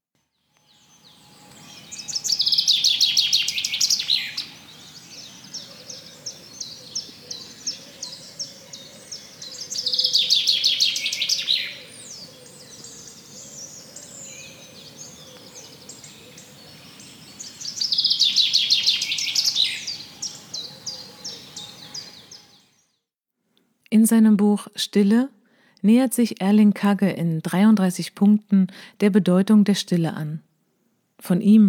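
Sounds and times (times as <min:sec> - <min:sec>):
bird trilling: 0:01.1 - 0:22.7
speech: 0:24.1 - 0:30.5, 0:31.2 - 0:31.6.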